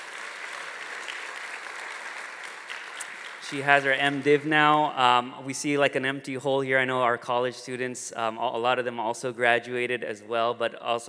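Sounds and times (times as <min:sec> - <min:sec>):
audience applauding: 0:00.0 - 0:04.8
speech: 0:03.5 - 0:11.0.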